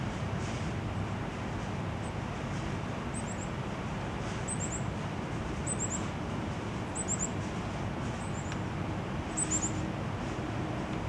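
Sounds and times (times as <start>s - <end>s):
steady low rumbling traffic noise: 0.0s - 11.0s
Yellow-bellied tit nocturnal flight calls: 3.2s - 3.6s, 4.3s - 4.9s, 5.6s - 6.1s, 7.0s - 7.4s, 9.3s - 9.8s.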